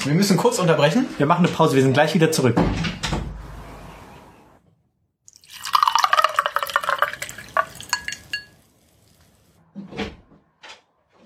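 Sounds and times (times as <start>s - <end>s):
speech: 0.0s - 3.2s
drink pouring into a glass: 5.3s - 9.2s.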